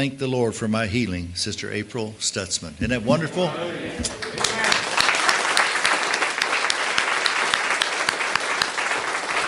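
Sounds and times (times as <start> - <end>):
speech: 0.0 - 4.4
room full of people applauding: 4.0 - 9.4.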